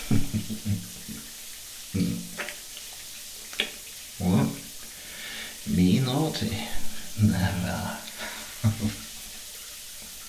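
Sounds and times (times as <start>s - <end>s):
shower water running: 0.0s - 10.2s
speech: 6.3s - 8.0s, 8.6s - 9.0s.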